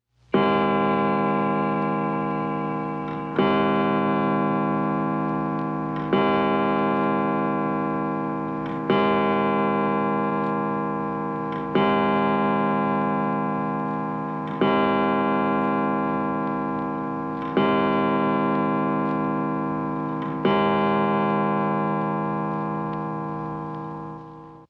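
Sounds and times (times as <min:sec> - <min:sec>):
grandfather clock: 0:00.2 - 0:24.6.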